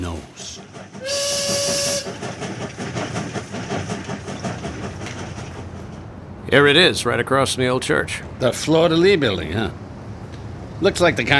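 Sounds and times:
train rumbling and clattering along the rails: 0.0 - 11.3
loud train whistle: 1.0 - 2.2
speech: 6.5 - 9.8, 10.8 - 11.3.

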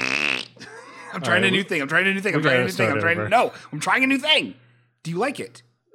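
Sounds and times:
person imitating fart noises with the mouth: 0.0 - 0.7
speech: 1.1 - 5.7.

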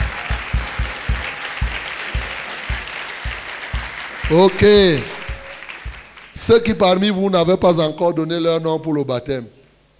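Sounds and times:
sharper individual claps: 0.0 - 6.8
crowd applauding: 0.0 - 7.0
speech: 4.3 - 5.1, 6.4 - 9.6.

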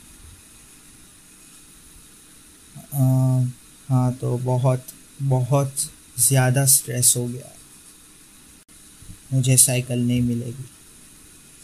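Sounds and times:
steady broadband whooshing hum: 0.0 - 11.6
speech: 2.9 - 7.6, 9.3 - 10.8.

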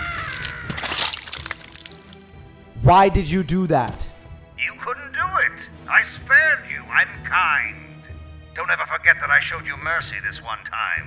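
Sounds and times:
blood dripping: 0.0 - 2.4
head bursting in a wet crunching splatter of blood: 0.0 - 2.4
squelching splatters of blood and gore: 0.0 - 2.4
speech: 2.8 - 4.0, 6.0 - 7.8, 8.6 - 11.0.

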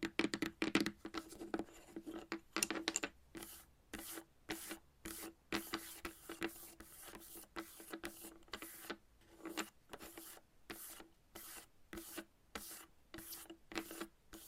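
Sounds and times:
chalk tapping: 0.1 - 14.4
chalk scratching in quick regular strokes: 3.3 - 14.4.

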